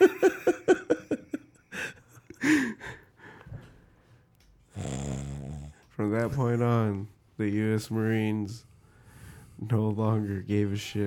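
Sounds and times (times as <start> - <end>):
laughter: 0.0 - 2.3
person imitating raspy snores: 4.8 - 5.8
speech: 6.1 - 8.7, 9.6 - 11.0.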